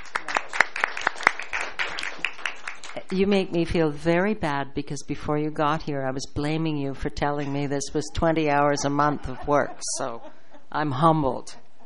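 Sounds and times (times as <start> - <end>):
small audience applause: 0.0 - 3.0
speech: 3.1 - 11.6
laughter: 7.4 - 11.0.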